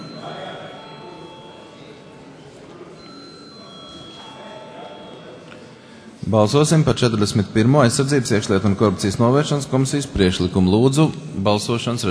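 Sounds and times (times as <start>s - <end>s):
parliament voting bell ringing: 0.0s - 8.2s
low murmur of voices in a parliament chamber: 0.0s - 12.0s
speech: 6.2s - 12.0s.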